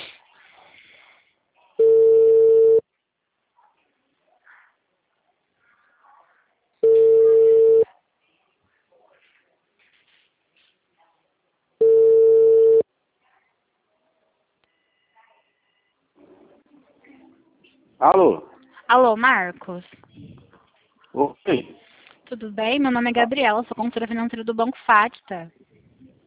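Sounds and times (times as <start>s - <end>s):
telephone ringing tone on an outgoing call: 1.8s - 2.8s, 6.8s - 7.8s, 11.8s - 12.8s
speech: 18.0s - 20.5s, 21.2s - 25.6s.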